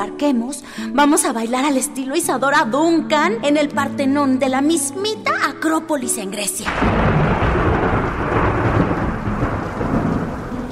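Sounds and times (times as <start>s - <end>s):
speech: 0.2s - 7.2s
deep continuous rumble of thunder: 6.7s - 10.7s
heavy rain pouring down: 6.7s - 10.7s.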